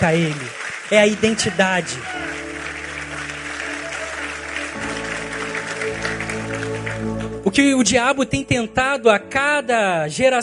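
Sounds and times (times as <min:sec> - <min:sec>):
speech: 0:00.0 - 0:02.2, 0:07.5 - 0:10.4
audience applauding: 0:00.0 - 0:07.6
sustained musical chords: 0:01.2 - 0:09.3.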